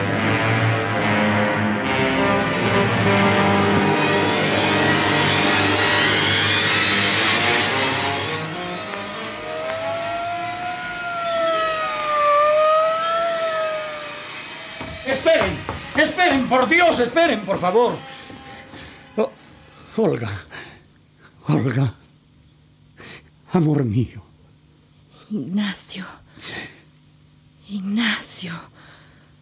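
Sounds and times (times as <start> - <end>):
vehicle engine revving: 0.3 - 15.9
ambulance siren wailing: 4.7 - 15.1
speech: 16.5 - 18.2, 19.2 - 19.4, 20.0 - 20.5, 21.5 - 22.0, 23.6 - 24.2, 25.3 - 26.2, 27.7 - 28.9.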